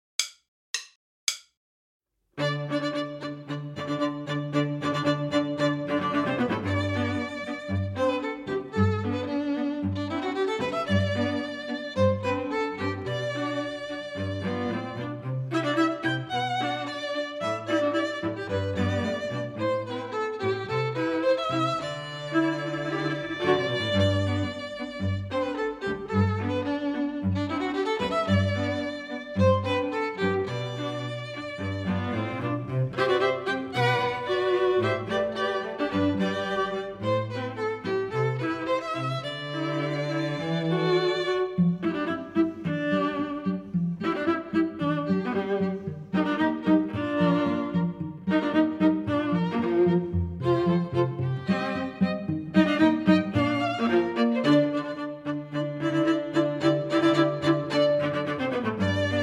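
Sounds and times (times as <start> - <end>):
second violin part: 2.4 - 59.2.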